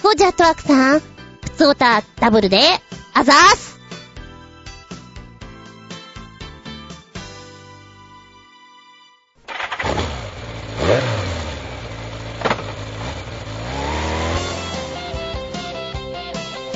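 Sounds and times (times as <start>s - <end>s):
speech: 0.1s - 3.7s
motorcycle engine starting up and revving: 9.5s - 16.7s
short musical opening: 14.2s - 16.7s.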